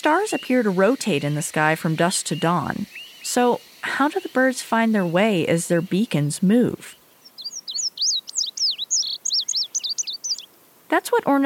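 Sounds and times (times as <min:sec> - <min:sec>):
speech: 0:00.0 - 0:07.0, 0:10.9 - 0:11.4
Indigo Bunting song: 0:00.0 - 0:10.4.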